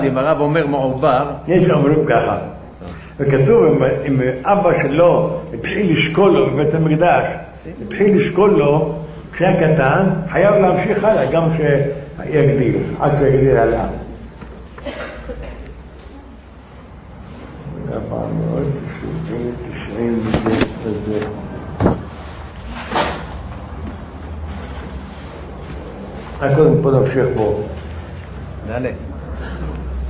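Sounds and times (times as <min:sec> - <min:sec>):
speech: 0:00.0 - 0:14.0, 0:17.9 - 0:21.3, 0:26.4 - 0:27.7, 0:28.7 - 0:29.2
door being opened and shut with knocks and clunks: 0:21.8 - 0:22.1.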